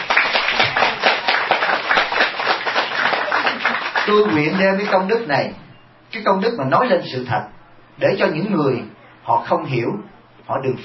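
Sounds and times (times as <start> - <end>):
audience applause following a speech at a gathering: 0.0 - 5.2
speech: 4.1 - 10.8.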